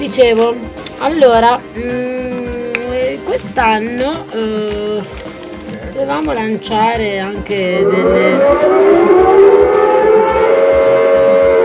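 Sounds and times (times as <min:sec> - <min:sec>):
speech: 0:00.0 - 0:02.3, 0:03.3 - 0:05.2, 0:05.9 - 0:09.6
air-raid siren wailing: 0:07.7 - 0:11.6.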